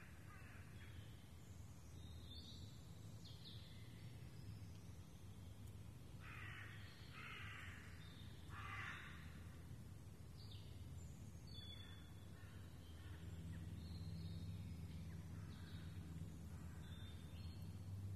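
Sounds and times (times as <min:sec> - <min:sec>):
raven cawing in the Rambouillet forest, France: 0:00.0 - 0:00.7, 0:06.2 - 0:07.9, 0:08.5 - 0:09.4
high twittering birds: 0:00.0 - 0:09.6, 0:10.3 - 0:18.1
constant low hum: 0:00.0 - 0:18.1.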